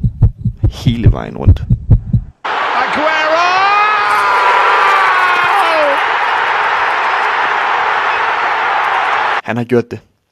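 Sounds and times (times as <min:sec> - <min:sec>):
speech: 0:00.7 - 0:01.8, 0:09.5 - 0:10.1
huge football stadium crowd cheering and shouting after a winning goal: 0:02.4 - 0:09.4
excited voice: 0:02.6 - 0:06.1.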